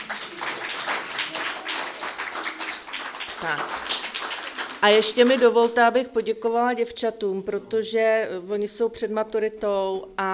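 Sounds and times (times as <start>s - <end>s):
audience applause: 0.0s - 5.4s
speech: 3.4s - 4.0s, 4.8s - 10.3s.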